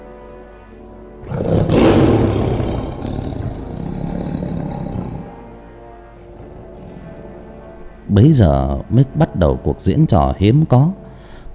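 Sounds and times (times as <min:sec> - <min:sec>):
tiger roaring: 0:01.2 - 0:08.0
speech: 0:08.2 - 0:11.0.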